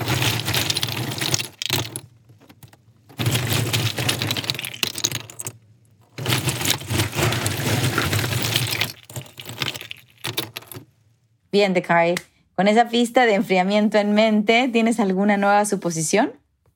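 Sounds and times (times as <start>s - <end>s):
ice cubes clattering out of an ice maker's dispenser: 0.0s - 5.5s, 6.1s - 10.8s
speech: 11.6s - 16.4s.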